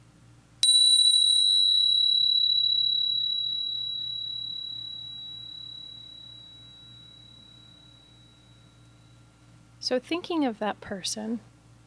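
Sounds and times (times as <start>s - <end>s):
meditation bell struck once: 0.6s - 9.3s
speech: 9.8s - 11.5s.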